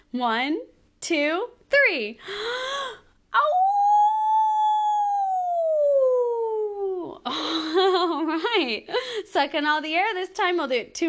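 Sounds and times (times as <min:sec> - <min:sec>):
speech: 0:00.1 - 0:02.8, 0:08.5 - 0:11.0
person howling like a wolf: 0:03.4 - 0:07.2.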